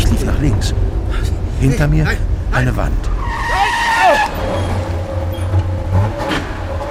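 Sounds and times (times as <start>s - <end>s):
car engine rumble: 0.0s - 6.8s
speech: 0.5s - 1.0s, 1.6s - 3.2s
car tire squeal while swerving: 3.1s - 6.8s.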